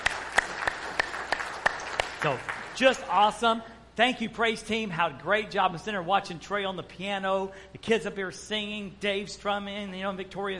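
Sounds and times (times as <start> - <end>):
crowd applause: 0.0 - 3.2
speech: 2.2 - 10.5.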